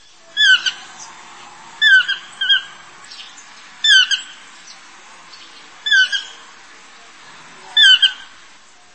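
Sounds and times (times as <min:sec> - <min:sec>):
toucan calls with harsh squawking bursts: 0:00.1 - 0:01.1, 0:01.8 - 0:06.5, 0:07.7 - 0:08.4.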